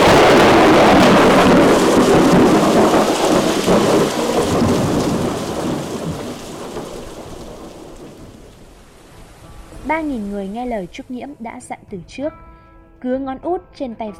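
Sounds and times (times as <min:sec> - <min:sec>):
thunder rolling: 0:00.0 - 0:08.9
lightning strike: 0:00.0 - 0:09.3
heavy steady rain: 0:00.0 - 0:10.9
speech: 0:10.0 - 0:14.1.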